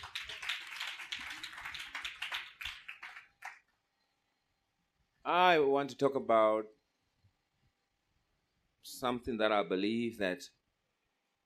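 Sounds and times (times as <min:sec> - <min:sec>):
audience clapping hands: 0:00.0 - 0:03.7
speech: 0:05.3 - 0:06.8, 0:09.0 - 0:10.6.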